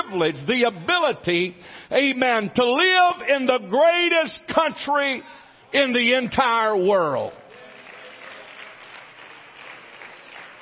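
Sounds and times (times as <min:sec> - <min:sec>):
speech: 0:00.1 - 0:07.4
audience giving thin subdued applause: 0:07.3 - 0:10.6.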